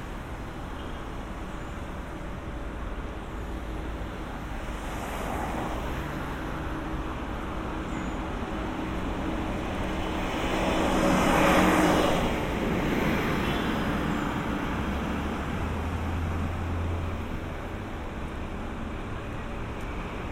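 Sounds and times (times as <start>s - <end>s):
steady traffic around a city park in Central Park: 0.0s - 20.3s.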